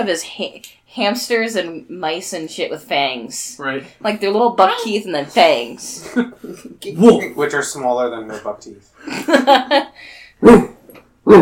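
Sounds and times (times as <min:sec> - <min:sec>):
speech: 0:00.0 - 0:10.7
person imitating a poodle barking: 0:10.4 - 0:11.3.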